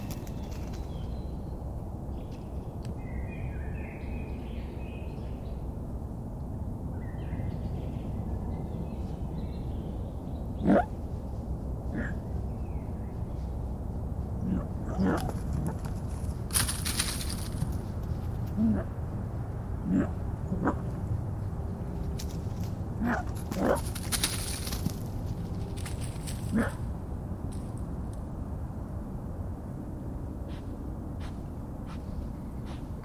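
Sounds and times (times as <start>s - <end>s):
steady low rumble in a spring forest: 0.0s - 33.0s
rustling: 15.2s - 18.5s, 22.2s - 26.7s.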